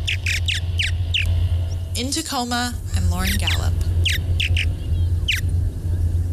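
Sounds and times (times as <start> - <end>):
purple martin chirps: 0.0 - 2.0, 3.1 - 5.5
steady low rumble: 0.0 - 6.3
speech: 2.0 - 4.2.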